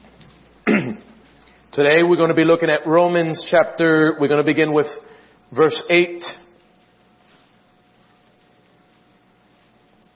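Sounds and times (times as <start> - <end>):
low hiss: 0.0 - 10.1
cough: 0.6 - 1.2
speech: 1.8 - 6.4.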